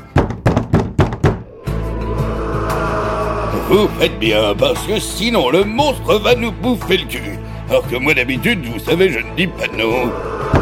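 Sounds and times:
firm knocks on a door: 0.1s - 1.4s
steady low rumbling noise: 1.4s - 5.4s, 9.4s - 10.6s
speech: 3.7s - 10.6s.

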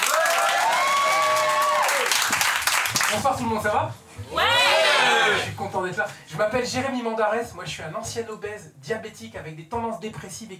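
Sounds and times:
large audience applauding: 0.0s - 3.2s
speech: 3.1s - 4.6s, 5.3s - 10.5s.

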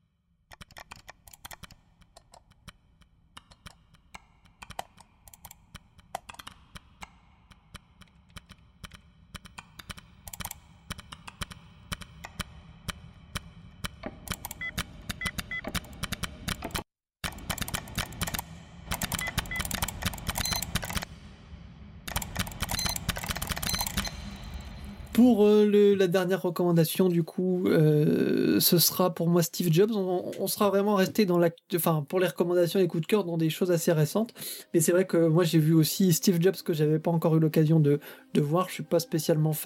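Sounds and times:
rhythmic computer mouse clicks forming a musical piece: 0.5s - 21.1s, 22.1s - 25.2s
low sustained hum: 21.0s - 25.2s
speech: 25.2s - 39.6s.

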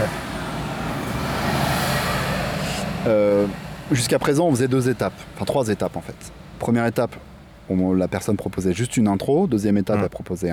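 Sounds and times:
heavy truck rumbling past outside: 0.0s - 7.7s
speech: 3.0s - 10.5s.

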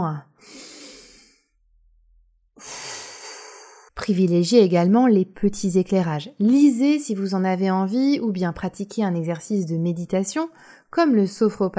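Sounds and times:
speech: 0.0s - 0.6s, 4.1s - 11.7s
long full exhale: 0.4s - 1.6s, 2.6s - 3.9s
slow deep breath drawn in: 0.4s - 1.6s, 2.6s - 3.9s.

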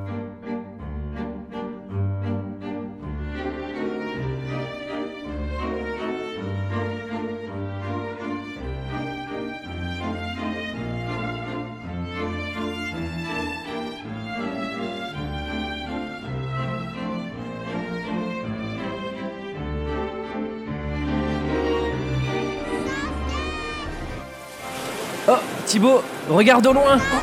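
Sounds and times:
airy waltz from a film soundtrack: 0.0s - 27.2s
speech: 25.3s - 27.2s.

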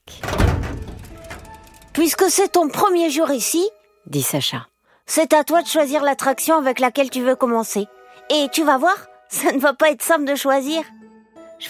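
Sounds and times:
small metal side door into an abandoned park opening: 0.0s - 2.6s
speech: 2.0s - 11.0s.

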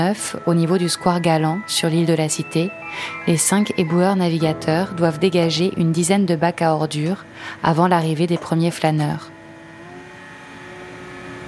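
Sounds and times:
speech: 0.0s - 9.3s
small boat engine purring on the Seine in Paris under the Pont Neuf: 9.5s - 11.4s.

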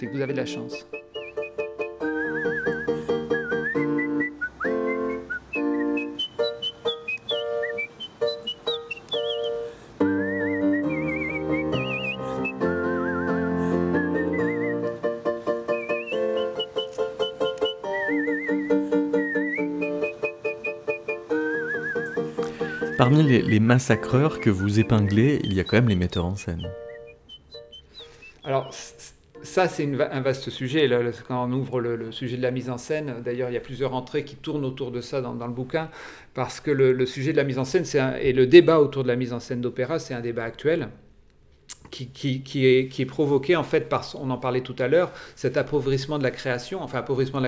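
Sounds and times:
speech: 0.0s - 1.1s, 23.2s - 26.8s, 29.6s - 41.0s, 42.0s - 47.4s
steady instrumental accompaniment: 0.0s - 28.2s
person whistling a coloratura opera aria: 0.8s - 15.0s, 15.6s - 28.8s.

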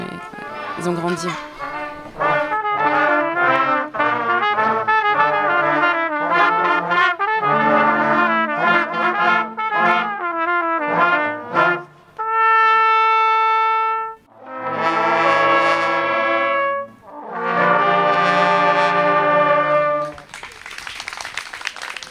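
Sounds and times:
band playing brassy music with sustained notes: 0.0s - 20.3s
speech: 0.8s - 1.6s
audience applause: 20.0s - 22.1s.

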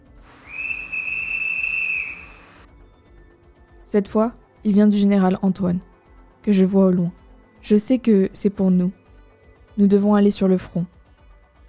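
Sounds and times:
sustained shrill whistle blast: 0.3s - 2.7s
speech: 3.9s - 9.0s, 9.8s - 11.0s.

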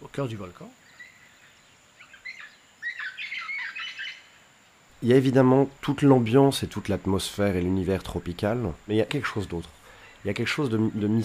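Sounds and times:
faint high insect-like hiss in a tropical forest: 0.0s - 11.2s
speech: 0.2s - 0.8s, 5.0s - 11.2s
tropical forest birds squawking: 0.8s - 4.4s.

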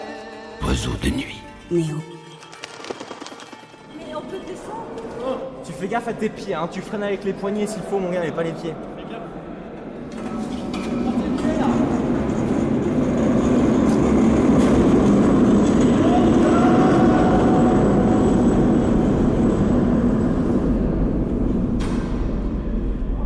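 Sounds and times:
speech: 0.7s - 2.1s, 5.8s - 8.9s
cart rumbling on metal rails in a metro tunnel: 10.2s - 23.1s.

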